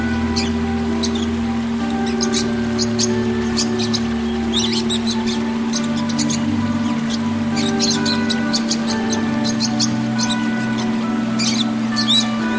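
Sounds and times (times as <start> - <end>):
Oriental magpie-robin singing: 0.0 - 12.5
low electrical hum: 0.0 - 12.5.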